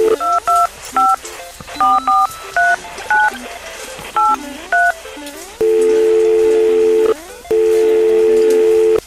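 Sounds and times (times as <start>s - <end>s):
telephone keypad tones: 0.0s - 3.4s, 5.6s - 9.0s
telephone ringing tones: 0.0s - 9.0s.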